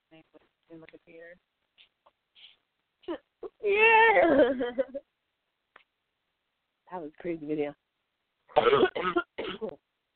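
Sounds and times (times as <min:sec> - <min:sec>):
speech: 0:00.2 - 0:01.9, 0:03.1 - 0:05.0, 0:06.9 - 0:07.8, 0:08.6 - 0:09.8
sick person coughing: 0:08.6 - 0:09.8.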